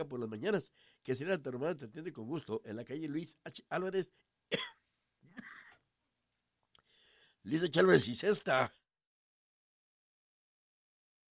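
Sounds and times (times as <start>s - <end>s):
speech: 0.0s - 4.8s, 7.4s - 8.8s
person coughing: 4.5s - 5.8s.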